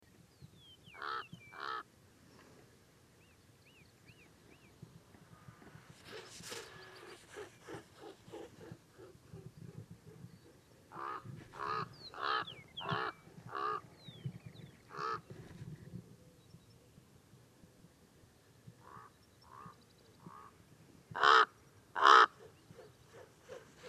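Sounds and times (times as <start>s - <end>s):
Common Raven Corvus corax calling: 1.0s - 1.8s, 6.1s - 13.8s, 14.9s - 15.2s, 21.2s - 23.8s.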